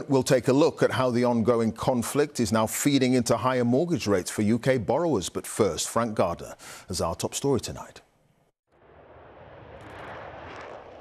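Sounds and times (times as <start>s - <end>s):
speech: 0.1s - 8.0s
US Air Force B-1 bomber departing an airbase: 8.8s - 10.9s.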